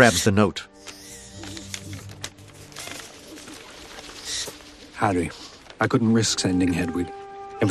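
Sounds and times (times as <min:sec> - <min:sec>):
speech: 0:00.0 - 0:01.0, 0:05.0 - 0:07.6
owl wingbeats: 0:00.0 - 0:05.8.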